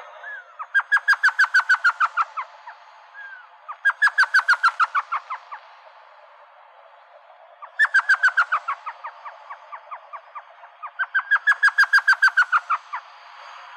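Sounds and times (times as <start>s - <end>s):
elf owl calling: 0.0s - 5.9s, 7.6s - 13.1s.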